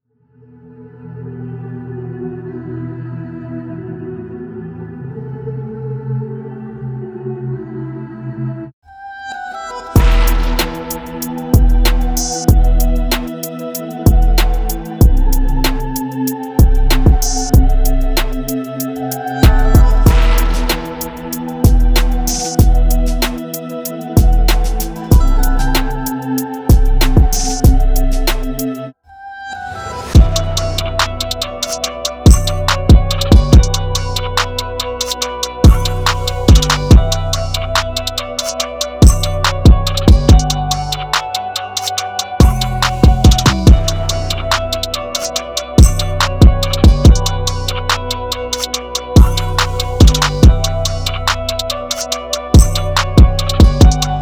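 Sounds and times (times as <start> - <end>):
German rap drum kit: 10.0 - 28.8, 30.2 - 54.2.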